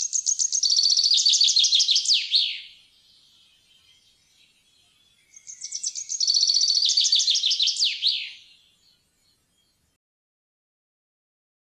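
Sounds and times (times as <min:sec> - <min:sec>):
common chaffinch singing: 0:00.0 - 0:10.0.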